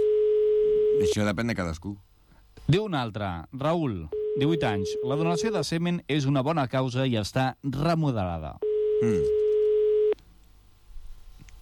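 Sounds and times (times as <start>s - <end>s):
telephone busy signal on an unanswered call: 0.0s - 1.1s, 4.1s - 5.6s, 8.6s - 10.2s
speech: 1.0s - 9.4s.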